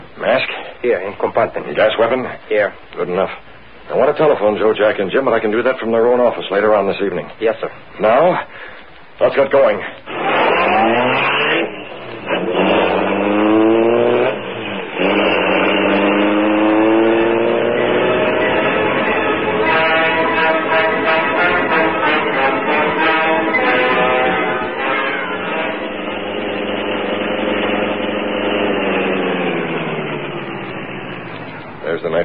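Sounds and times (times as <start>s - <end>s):
speech: 0.3s - 10.2s
car engine revving and driving off: 10.1s - 32.1s.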